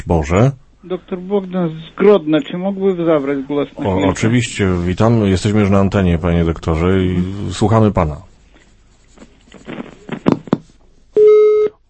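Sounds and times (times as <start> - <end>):
speech: 0.0 - 8.3
telephone busy tone after a caller disconnects: 11.2 - 11.8.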